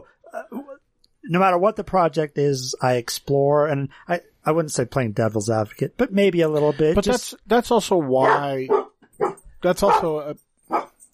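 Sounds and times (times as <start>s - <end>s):
speech: 1.3s - 8.8s, 9.6s - 10.5s
dog barking and yelping: 8.2s - 11.0s.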